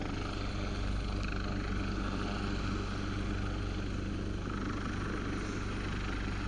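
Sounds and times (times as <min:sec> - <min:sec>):
rescue helicopter flying overhead with rotor thrum and engine roar: 0:00.0 - 0:06.4.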